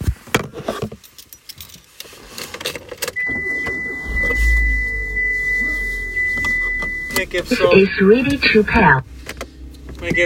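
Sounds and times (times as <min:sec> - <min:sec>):
low steady hum: 0:03.2 - 0:10.2
speech: 0:07.2 - 0:09.1, 0:10.0 - 0:10.2.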